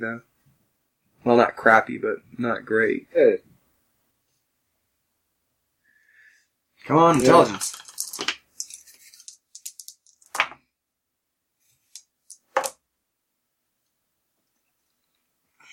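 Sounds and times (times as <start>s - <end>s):
speech: 0.0s - 0.3s, 1.2s - 3.5s, 6.8s - 8.3s
dice rolling: 7.1s - 10.6s, 11.8s - 12.8s.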